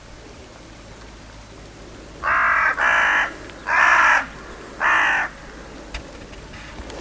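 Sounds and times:
bird rough cawing calls: 2.2 - 5.9.

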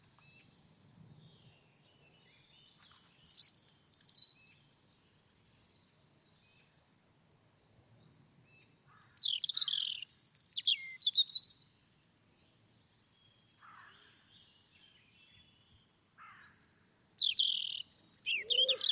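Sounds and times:
European robin singing: 0.0 - 6.8, 8.4 - 18.9.

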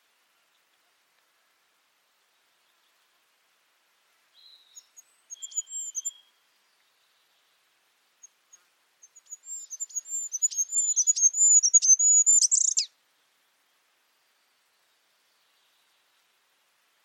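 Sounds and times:
bird calls: 4.4 - 6.3, 8.5 - 12.9.

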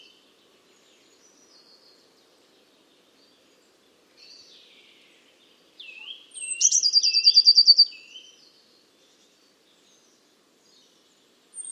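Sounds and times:
Eurasian blue tit calling: 6.0 - 7.9.

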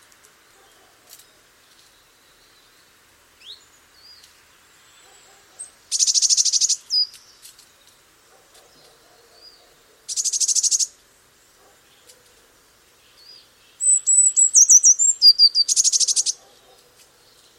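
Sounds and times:
Eurasian blue tit song: 0.6 - 12.4, 13.0 - 17.5.

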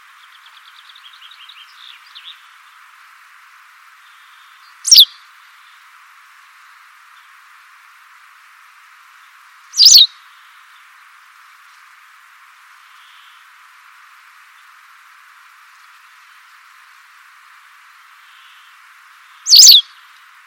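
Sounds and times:
steady soft hiss: 0.0 - 20.4
white wagtail call: 4.9 - 5.1, 9.8 - 10.1, 19.5 - 19.8.

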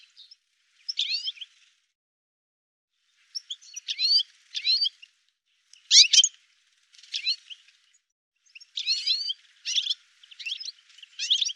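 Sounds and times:
bird twittering chirps: 0.0 - 1.5, 3.2 - 5.1, 5.8 - 6.4, 8.4 - 11.5.

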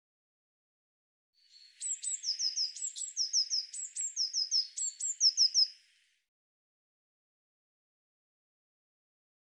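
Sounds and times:
Eurasian blue tit calls: 1.5 - 5.8.

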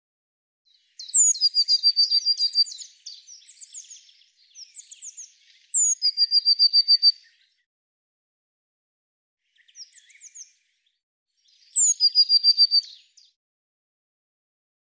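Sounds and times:
Eurasian blue tit song: 0.7 - 7.7, 9.4 - 13.4.

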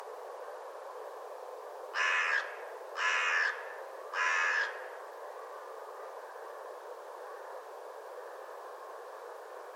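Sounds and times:
constant background hiss: 0.0 - 9.7
bird cawing: 1.9 - 5.0.

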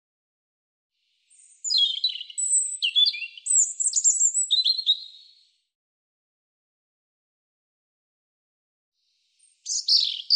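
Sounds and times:
European robin singing: 1.1 - 5.6, 9.3 - 10.3.

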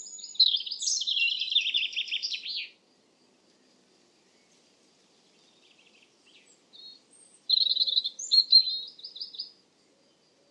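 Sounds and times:
European robin singing: 0.0 - 2.8, 4.3 - 9.6.

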